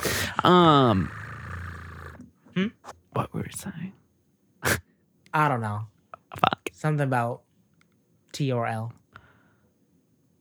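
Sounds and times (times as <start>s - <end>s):
person imitating a cat purring: 0.0s - 3.1s, 6.2s - 6.6s
speech: 0.4s - 1.2s, 2.6s - 4.0s, 4.6s - 7.4s, 8.4s - 9.0s.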